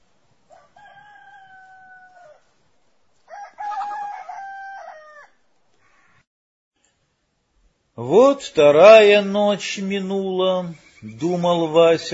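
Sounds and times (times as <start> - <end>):
rooster crowing: 0.5 - 2.5, 3.2 - 5.4
speech: 8.0 - 12.1.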